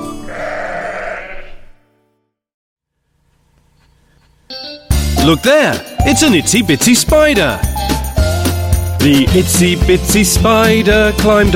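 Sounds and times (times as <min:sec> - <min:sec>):
sheep bleating: 0:00.0 - 0:01.8
speech: 0:05.3 - 0:07.9, 0:09.0 - 0:11.5.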